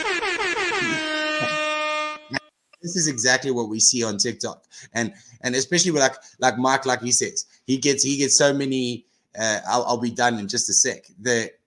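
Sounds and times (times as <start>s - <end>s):
air horn blast: 0.0s - 2.4s
speech: 2.8s - 11.6s.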